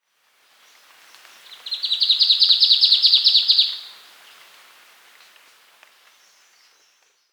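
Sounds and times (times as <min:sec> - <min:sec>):
Hume's treecreeper calling: 0:00.7 - 0:04.3.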